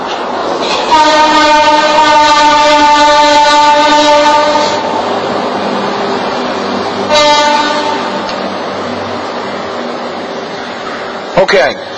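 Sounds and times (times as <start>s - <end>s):
passing train rumble: 0.0s - 11.9s
train horn blaring: 0.7s - 5.0s, 7.1s - 8.4s
speech: 11.5s - 11.9s.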